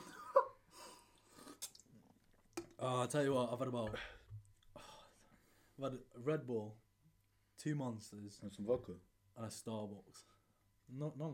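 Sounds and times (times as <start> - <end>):
sipping orange juice: 1.0 - 2.8
slurping orange juice: 1.1 - 2.8
speech: 2.8 - 4.2, 5.8 - 6.8, 7.6 - 11.3.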